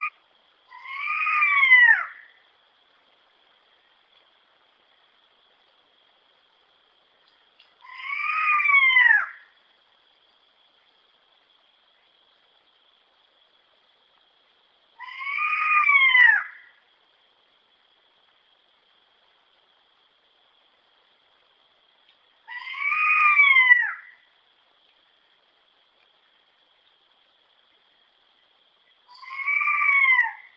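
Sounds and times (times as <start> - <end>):
striped owl calling: 0.7 - 2.4, 7.8 - 9.6, 15.0 - 16.8, 22.4 - 24.3, 29.1 - 30.5.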